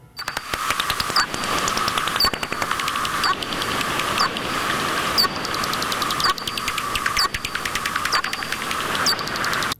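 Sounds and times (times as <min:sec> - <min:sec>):
constant hiss: 0:00.0 - 0:09.7
bat echolocation clicks through a bat detector: 0:00.1 - 0:09.7.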